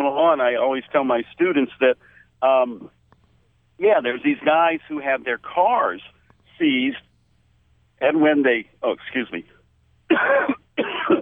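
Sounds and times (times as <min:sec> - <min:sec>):
speech: 0:00.2 - 0:03.0, 0:03.8 - 0:07.1, 0:08.0 - 0:09.5, 0:10.1 - 0:11.2
person coughing: 0:10.1 - 0:11.2.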